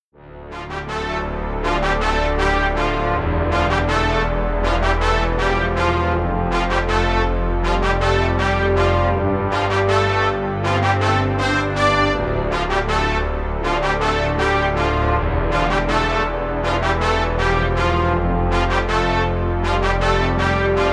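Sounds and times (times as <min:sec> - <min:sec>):
brass melody: 0:00.2 - 0:20.9.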